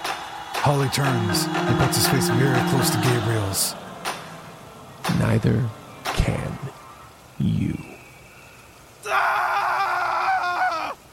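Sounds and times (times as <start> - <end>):
speech: 0.6 - 3.9, 5.2 - 6.8, 7.4 - 7.9
man screaming: 9.0 - 11.0.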